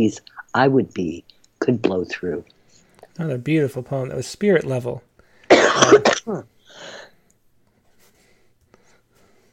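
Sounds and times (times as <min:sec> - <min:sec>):
speech: 0:00.0 - 0:02.6, 0:03.2 - 0:07.0
person coughing: 0:05.5 - 0:06.4
raspy throat clearing: 0:05.5 - 0:06.5.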